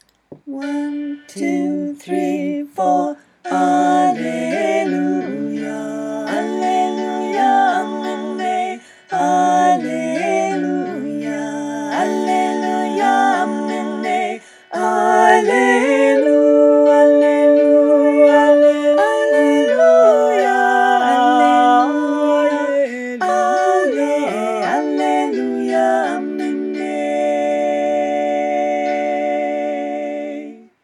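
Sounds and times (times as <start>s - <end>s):
three-part choir singing: 0.4s - 30.8s.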